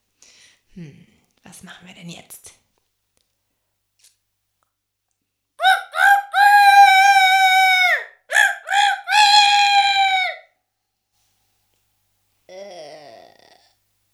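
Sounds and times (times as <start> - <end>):
speech: 0.8 - 2.6
person imitating a rooster crowing: 5.6 - 10.5, 12.5 - 13.7.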